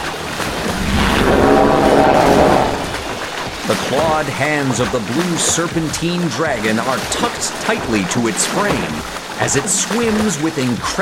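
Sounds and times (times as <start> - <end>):
large waves crashing in swirling water: 0.1 - 5.2
windy rush: 0.2 - 4.4
speech: 4.0 - 11.0.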